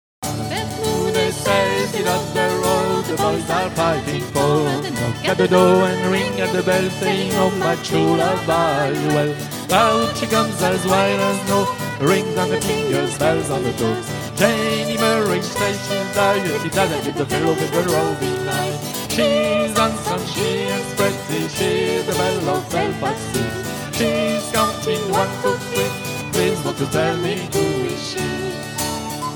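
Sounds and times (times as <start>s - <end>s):
songs: 0.2s - 29.3s.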